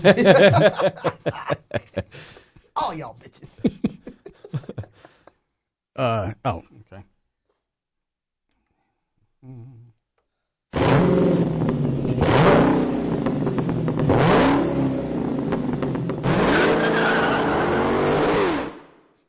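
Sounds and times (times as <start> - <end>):
laughter: 0.0 - 2.5, 3.1 - 5.4
speech: 0.0 - 4.9, 6.0 - 7.1, 9.4 - 9.8
stock car engine revving: 10.8 - 18.9
stock car tire squeal: 16.2 - 18.8.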